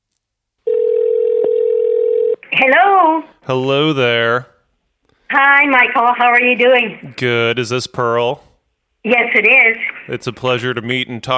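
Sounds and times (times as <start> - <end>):
telephone line tone: 0.7 - 2.4
speech: 2.6 - 4.5, 5.3 - 11.3.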